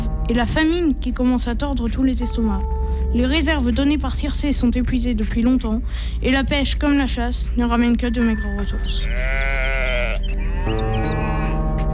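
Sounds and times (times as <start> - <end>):
speech: 0.3 - 9.8
sheep bleating: 8.9 - 11.9
cattle lowing: 9.0 - 11.9.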